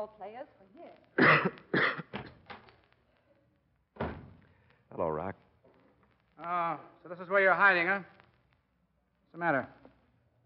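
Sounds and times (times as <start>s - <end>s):
speech: 0.0s - 2.0s, 4.9s - 5.4s, 6.4s - 8.2s, 9.4s - 9.8s
man coughing harshly: 1.2s - 2.2s.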